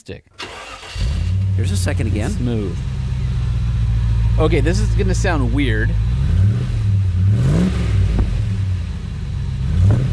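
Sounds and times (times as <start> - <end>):
speech: 0.0 - 3.0, 4.4 - 6.4
V8 engine revving: 0.4 - 10.1.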